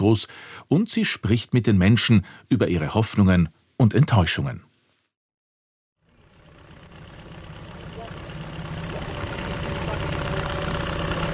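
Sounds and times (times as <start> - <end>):
speech: 0.0 - 4.7
engine of a dark wooden tourist boat with a reed roof humming on Lake Skadar: 6.0 - 11.3.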